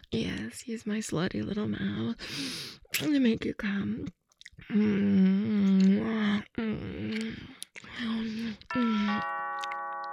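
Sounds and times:
speech: 0:00.1 - 0:07.4
two-tone doorbell chime: 0:08.7 - 0:10.1.

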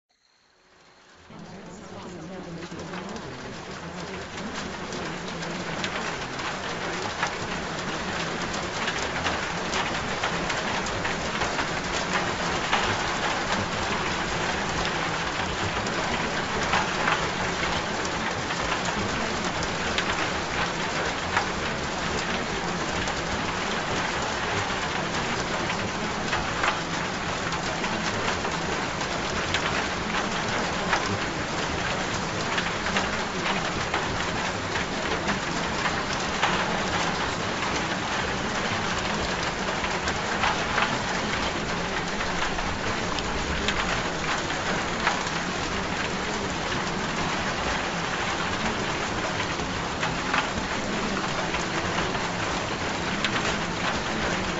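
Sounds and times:
rain: 0:00.1 - 0:54.5.

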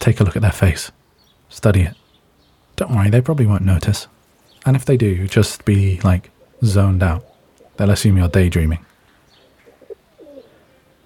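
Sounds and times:
speech: 0:00.0 - 0:02.0, 0:02.8 - 0:08.9
faint outdoor background: 0:00.0 - 0:11.0
pigeons cooing while being fed: 0:06.2 - 0:11.0.

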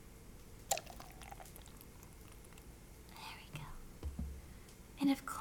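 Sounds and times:
small clicks and drips: 0:00.6 - 0:02.7
strawberry and banana fruit drink being poured: 0:00.7 - 0:02.7
speech: 0:05.1 - 0:05.3.

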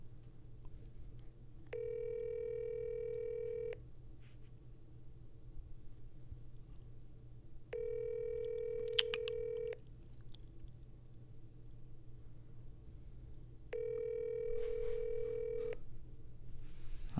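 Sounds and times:
low constant hum: 0:00.0 - 0:17.1
telephone line tones while placing a call: 0:01.7 - 0:03.8, 0:07.7 - 0:09.8, 0:13.7 - 0:15.8.

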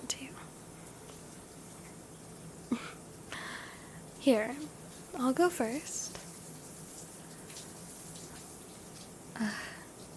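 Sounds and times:
hot water running into a bathtub: 0:00.6 - 0:10.1
speech: 0:04.2 - 0:06.0.

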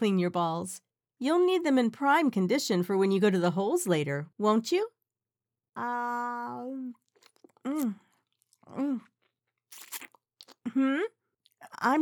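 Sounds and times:
speech: 0:00.0 - 0:05.0, 0:05.8 - 0:07.0, 0:07.6 - 0:08.0, 0:08.7 - 0:09.1, 0:10.6 - 0:12.0
person making humming moans and mm noises: 0:05.8 - 0:07.0
wet crunching and chewing while eating lunch: 0:06.9 - 0:10.7.

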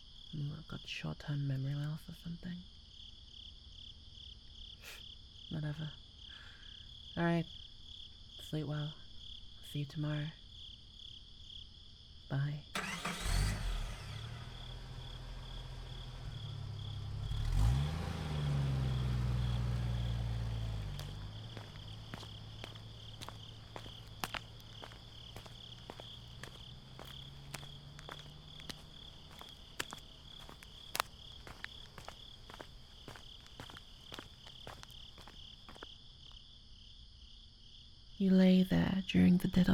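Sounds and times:
crickets chirping at night: 0:00.0 - 0:39.7
speech: 0:00.4 - 0:02.8, 0:04.8 - 0:06.0, 0:07.2 - 0:07.6, 0:08.4 - 0:09.0, 0:09.7 - 0:10.4, 0:12.3 - 0:12.9, 0:38.2 - 0:39.7
car passing by at night: 0:12.8 - 0:31.7
sharp clicking steps: 0:20.8 - 0:35.4.

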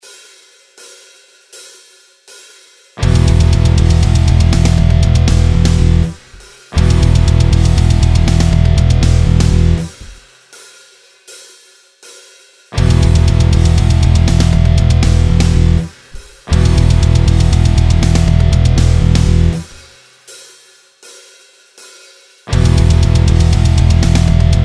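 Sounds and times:
practice backing track music: 0:03.0 - 0:10.2, 0:12.8 - 0:19.8, 0:22.5 - 0:24.6.

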